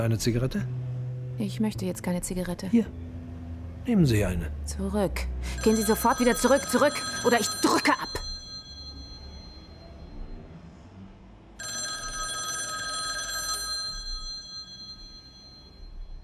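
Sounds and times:
speech: 0:00.0 - 0:00.8, 0:01.4 - 0:03.1, 0:03.8 - 0:08.2
telephone bell ringing in a police station office: 0:05.5 - 0:10.4, 0:11.6 - 0:16.2.

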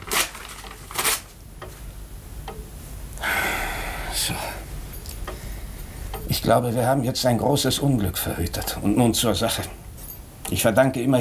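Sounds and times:
paper document being torn up: 0:00.0 - 0:01.4
speech: 0:04.2 - 0:04.5, 0:06.4 - 0:09.8, 0:10.5 - 0:11.1.

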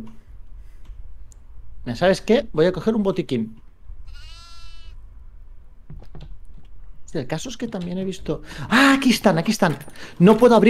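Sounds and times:
speech: 0:01.8 - 0:04.2, 0:07.1 - 0:10.6
goat bleating in a video game: 0:04.0 - 0:05.0.

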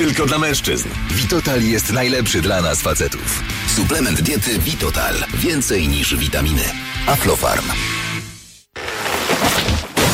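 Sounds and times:
speech: 0:00.1 - 0:08.0
tree branch falling onto a car: 0:08.9 - 0:10.1.

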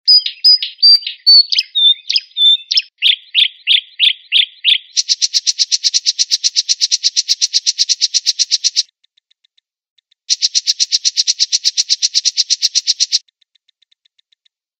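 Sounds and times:
Oriental magpie-robin singing: 0:00.0 - 0:08.9, 0:10.3 - 0:13.2.

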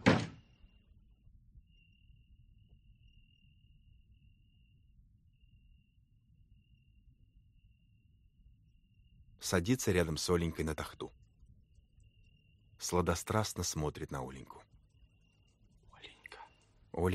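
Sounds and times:
door slamming shut: 0:00.0 - 0:00.4
faint steady high whine: 0:00.5 - 0:17.1
speech: 0:09.4 - 0:11.2, 0:12.8 - 0:14.7, 0:17.0 - 0:17.1.

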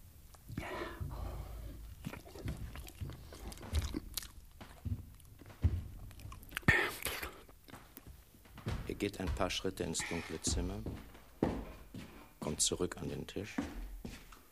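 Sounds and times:
steady wet mastication: 0:00.2 - 0:10.7
crunchy bites into food: 0:02.0 - 0:08.1
speech: 0:09.0 - 0:11.1, 0:12.6 - 0:13.8.

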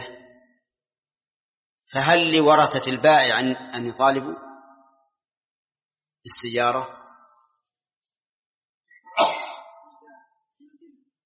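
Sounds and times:
speech: 0:01.9 - 0:04.4, 0:06.2 - 0:07.0
person sneezing during a religious lesson: 0:09.1 - 0:09.8.

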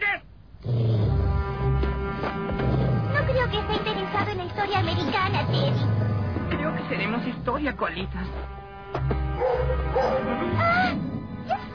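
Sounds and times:
steady low hum: 0:00.3 - 0:09.9
speech: 0:07.0 - 0:11.0
dog barking and yipping: 0:09.4 - 0:10.4
dog whimpering: 0:09.4 - 0:11.7.

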